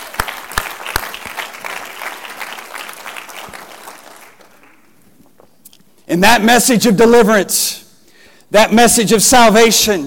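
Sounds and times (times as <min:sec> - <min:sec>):
crowd clapping hands in sustained applause: 0:00.0 - 0:05.0
speech: 0:06.1 - 0:07.8, 0:08.5 - 0:10.0.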